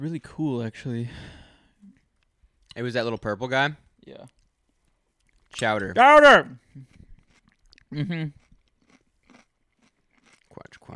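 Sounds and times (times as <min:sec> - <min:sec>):
speech: 0:00.0 - 0:01.4, 0:02.8 - 0:04.4, 0:05.5 - 0:07.0, 0:07.9 - 0:08.4
crunchy food being bitten and chewed: 0:05.2 - 0:05.7, 0:06.6 - 0:10.9.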